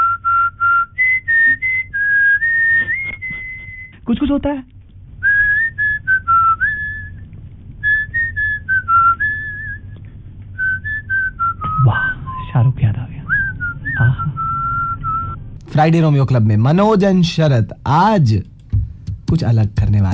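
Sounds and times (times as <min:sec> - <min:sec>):
whistled melody from a romantic film song: 0:00.0 - 0:03.9, 0:05.2 - 0:07.2, 0:07.8 - 0:10.0, 0:10.6 - 0:12.5, 0:13.3 - 0:15.4
low hum: 0:00.0 - 0:20.1
speech: 0:04.1 - 0:04.7, 0:15.8 - 0:18.5, 0:19.3 - 0:20.1.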